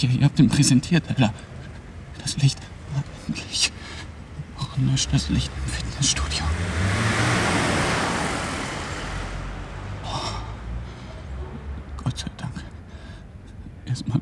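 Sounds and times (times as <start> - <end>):
speech: 0.0 - 1.5, 2.3 - 3.7, 4.8 - 6.5
car rushing past with low engine rumble: 5.0 - 12.0.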